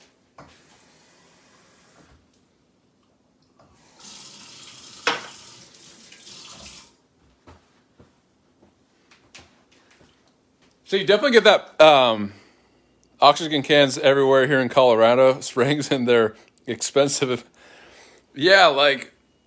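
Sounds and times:
kitchen tap water running in Colorado Springs: 0:03.8 - 0:07.0
speech: 0:10.9 - 0:12.4, 0:13.2 - 0:17.5, 0:18.4 - 0:19.1.

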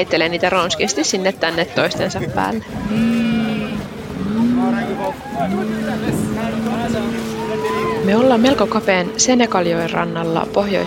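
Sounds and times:
speech: 0:00.0 - 0:03.2, 0:05.1 - 0:07.3, 0:08.0 - 0:10.8
low engine drone: 0:02.7 - 0:10.8
goats bleating while loaded into a small wooden boat on the Senegal River: 0:02.8 - 0:09.5.

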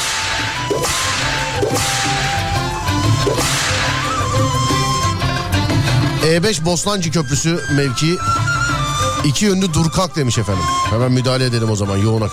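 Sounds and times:
whip cracks as a sound effect: 0:00.0 - 0:04.9
steady backing music: 0:00.0 - 0:12.3
speech: 0:06.3 - 0:08.5, 0:09.2 - 0:12.3.

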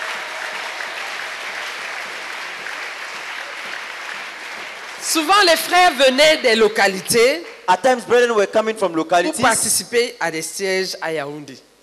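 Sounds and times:
church congregation applause at a thanksgiving prayer gathering: 0:00.0 - 0:06.0
speech: 0:05.1 - 0:11.7.

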